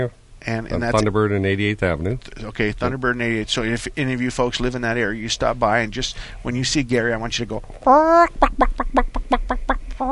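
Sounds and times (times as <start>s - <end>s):
speech: 0.0s - 10.1s
person imitating chicken squawks and clucks: 7.8s - 10.1s.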